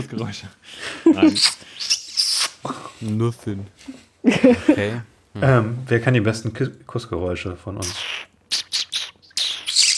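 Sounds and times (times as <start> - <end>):
speech: 0.0 - 2.0, 2.6 - 8.1
blackbird chirping and twittering: 7.8 - 9.9.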